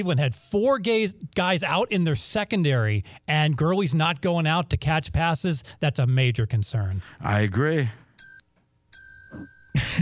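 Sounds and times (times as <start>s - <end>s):
speech: 0.0s - 8.0s
bell ringing: 8.2s - 9.8s.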